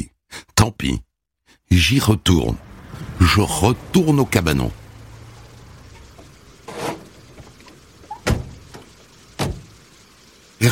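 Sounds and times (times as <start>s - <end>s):
speech: 0.7s - 4.8s
knocking on a door: 9.4s - 9.7s.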